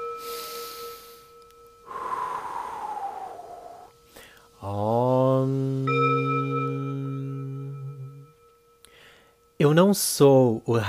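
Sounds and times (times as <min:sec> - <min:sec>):
steady faint hum: 0:00.0 - 0:09.6
deep breath: 0:00.2 - 0:04.6, 0:08.8 - 0:09.5
speech: 0:04.6 - 0:05.0, 0:09.6 - 0:10.8.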